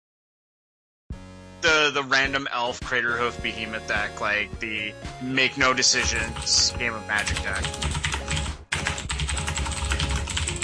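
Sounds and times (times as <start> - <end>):
speech: 1.9 - 8.0
loud angry typing on a computer keyboard: 6.0 - 10.6.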